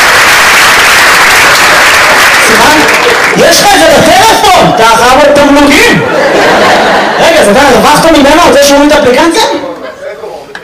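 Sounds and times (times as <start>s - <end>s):
crowd applauding: 0.0s - 4.5s
speech: 4.8s - 9.6s
laughter: 5.9s - 7.9s.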